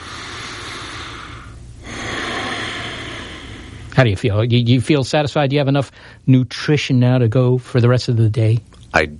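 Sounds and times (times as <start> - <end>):
deep breath: 0.0 - 3.9, 5.9 - 6.2
speech: 4.0 - 9.1.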